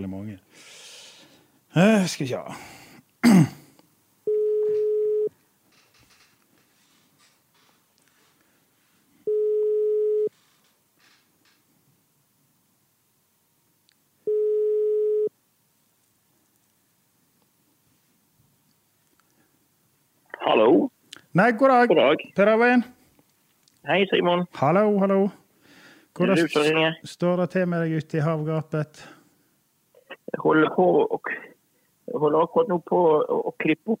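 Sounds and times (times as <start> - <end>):
speech: 0.0 - 0.8, 1.7 - 3.6, 21.4 - 23.0, 23.8 - 25.4, 26.2 - 29.2, 30.3 - 31.5, 32.1 - 33.9
telephone ringback tone over a line: 4.3 - 5.3, 9.3 - 10.3, 14.3 - 15.3.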